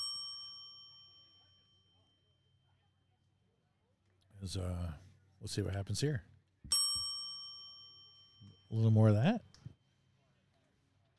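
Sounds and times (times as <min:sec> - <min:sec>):
single bright bell ding: 0:00.0 - 0:02.5, 0:06.7 - 0:09.0
speech: 0:04.4 - 0:06.8, 0:08.7 - 0:09.5.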